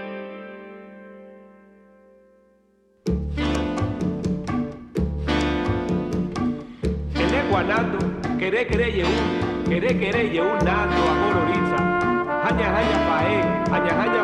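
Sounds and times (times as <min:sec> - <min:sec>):
Afro-Cuban orchestra music with horns and percussion: 0:03.1 - 0:14.2
sharp percussive hits: 0:03.1 - 0:14.2
speech: 0:08.5 - 0:11.4, 0:12.5 - 0:14.2.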